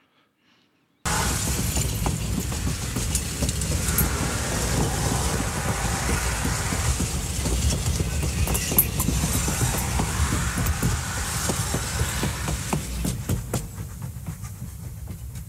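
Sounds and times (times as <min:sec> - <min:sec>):
train passing at a station: 0:01.1 - 0:15.4.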